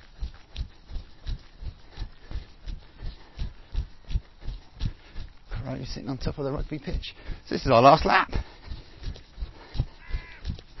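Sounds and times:
light outdoor noise: 0.0s - 10.7s
speech: 5.7s - 8.5s
rook cawing: 9.8s - 10.7s.

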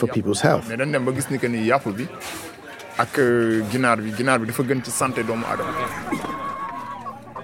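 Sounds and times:
speech: 0.0s - 6.3s
murmur of human voices and crowd noise: 0.0s - 7.4s
laughter: 4.5s - 7.4s
chickens for sale clucking and squawking at a market: 5.3s - 7.4s.

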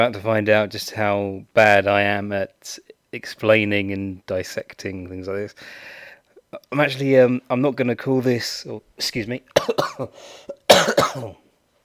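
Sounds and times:
speech: 0.0s - 11.4s
person coughing in short raspy bursts: 9.6s - 11.4s.

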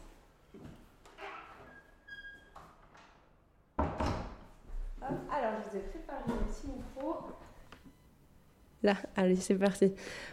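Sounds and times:
high door hinge squeak: 1.2s - 2.8s
door thudding shut at a trade fair hall: 3.8s - 4.4s
speech: 5.1s - 7.5s, 8.8s - 10.3s.

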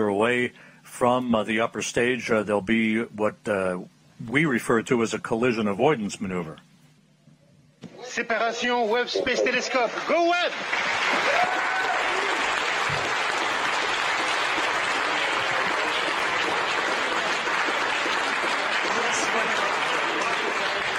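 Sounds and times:
speech: 0.2s - 6.7s, 8.2s - 11.7s
people cheering in a mission control center: 9.1s - 20.9s
roomful of people applauding in a mission control center celebrating telescope separation: 9.3s - 20.9s.

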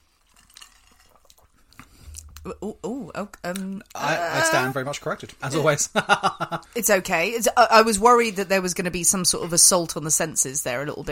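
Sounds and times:
person sipping a drink with wet slurps and mouth clicks: 0.2s - 2.6s
speech: 2.4s - 11.0s
voiced murmuring: 4.0s - 4.8s.

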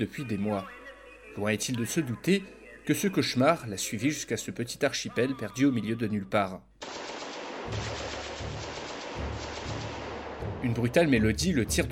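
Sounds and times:
speech: 0.0s - 0.8s, 1.4s - 7.1s, 7.7s - 8.0s, 10.6s - 11.9s
rapid machine-gun fire on the facade of a small house: 6.8s - 10.8s.

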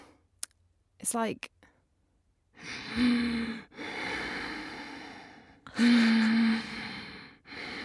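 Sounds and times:
speech: 1.0s - 1.5s, 2.6s - 3.9s
person imitating loud sleep breathing: 2.6s - 7.8s.

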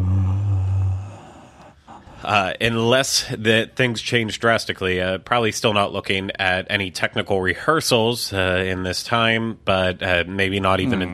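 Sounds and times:
person yawning close to the microphone: 0.0s - 2.0s
speech: 2.3s - 11.1s.

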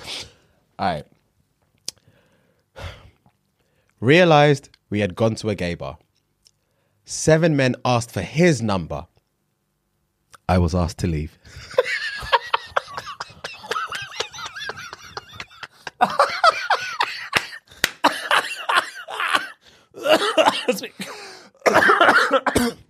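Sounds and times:
speech: 0.8s - 1.2s, 4.0s - 6.0s, 7.1s - 9.1s, 10.5s - 12.4s
breathy strained laughter: 11.5s - 20.8s
person coughing harshly: 12.6s - 22.8s.

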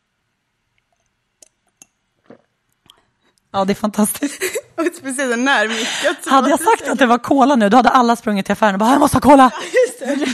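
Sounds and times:
person gulping water from a glass: 0.7s - 3.5s
speech: 3.6s - 10.3s
laughter: 9.3s - 10.3s.

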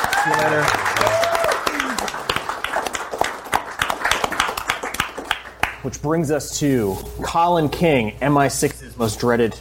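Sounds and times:
audience applause: 0.0s - 5.8s
speech: 0.2s - 0.9s, 5.8s - 9.5s.

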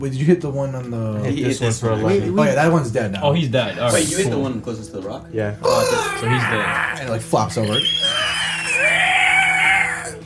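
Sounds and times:
speech: 0.0s - 8.4s
voice imitating a creature's agonized scream of anguish: 6.0s - 7.0s, 7.7s - 10.2s.

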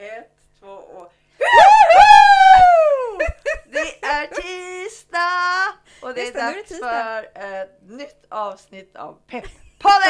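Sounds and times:
woman screaming high-pitched, leaning away from the microphone: 1.4s - 3.3s
speech: 6.4s - 10.0s.

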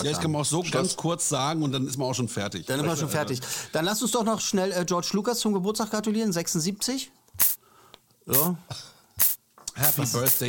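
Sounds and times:
speech: 0.0s - 7.5s, 8.3s - 10.4s
sharp hiss sound effect meant to be applause: 7.4s - 7.6s, 8.3s - 8.6s, 9.2s - 10.4s.

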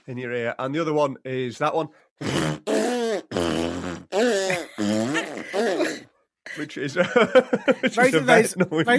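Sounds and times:
speech: 0.0s - 2.8s, 6.6s - 8.9s
person making fart noises with their lips: 2.2s - 6.1s
laughter: 6.8s - 8.9s.

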